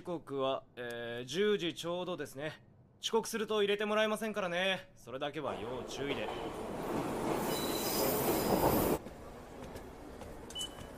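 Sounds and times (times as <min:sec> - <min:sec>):
speech: 0:00.0 - 0:06.7
train rumbling into station: 0:05.5 - 0:10.9
brief metallic squeak: 0:07.4 - 0:08.6
thin high train wheel squeal: 0:07.4 - 0:08.9.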